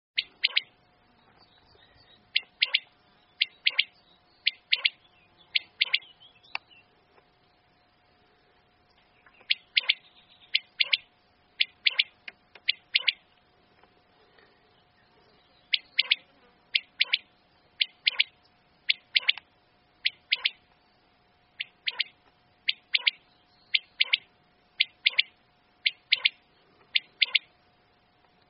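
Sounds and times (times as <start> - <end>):
quail: 0.2 - 0.7, 2.3 - 6.2, 9.4 - 13.2, 15.7 - 19.4, 20.0 - 20.6, 21.6 - 27.5.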